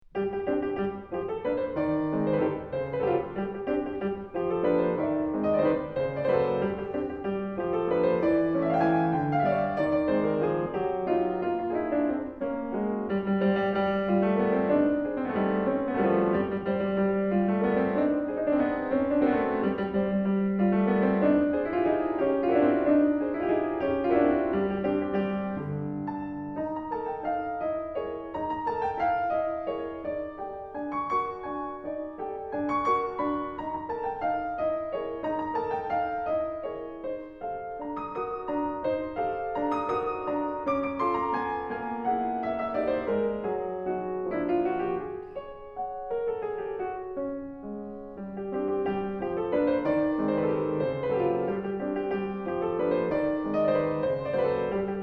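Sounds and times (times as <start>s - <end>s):
solo piano dance piece: 0.0s - 55.0s.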